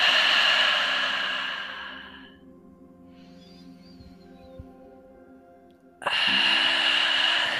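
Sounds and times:
deep breaths in through the nose and out through the mouth: 0.0s - 3.5s, 6.0s - 7.5s
soft sustained music: 0.0s - 7.5s.

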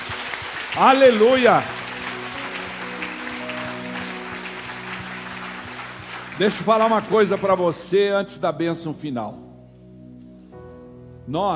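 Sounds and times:
large crowd applauding in a reverberant hall: 0.0s - 8.0s
speech: 0.8s - 1.8s, 6.4s - 9.4s, 11.3s - 11.5s.

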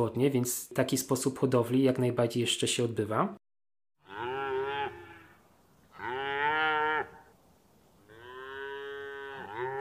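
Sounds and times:
speech: 0.0s - 3.4s
cow mooing: 4.0s - 7.3s, 8.1s - 9.7s.

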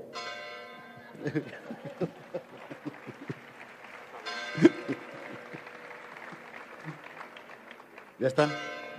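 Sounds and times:
large bell rung for an ambassador: 0.0s - 6.4s, 8.2s - 8.9s
laughter: 1.0s - 7.9s
busy crowd clapping: 1.0s - 8.9s
speech: 1.2s - 2.8s, 8.2s - 8.7s.

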